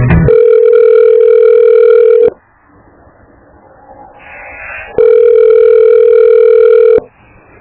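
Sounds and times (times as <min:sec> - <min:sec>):
noisy burst of telephone line clicks and tones during call attempt: 0:00.1 - 0:02.4, 0:04.9 - 0:07.1.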